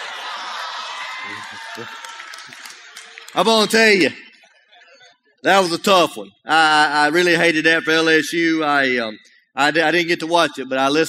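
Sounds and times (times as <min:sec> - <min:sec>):
large crowd yelling and cheering: 0:00.0 - 0:04.5
speech: 0:01.2 - 0:02.7, 0:03.3 - 0:04.2, 0:05.4 - 0:11.0.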